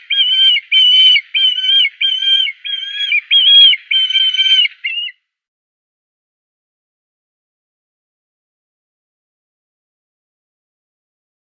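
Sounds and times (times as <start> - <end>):
Black kite calling with clear quavering whistled notes: 0.0 - 5.2.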